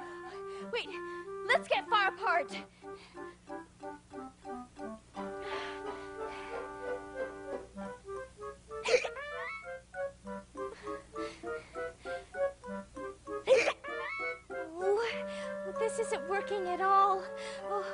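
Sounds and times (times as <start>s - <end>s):
light bouncy music: 0.0s - 17.9s
speech: 0.7s - 4.1s
squeaky hiccups: 8.8s - 9.6s, 13.5s - 14.3s.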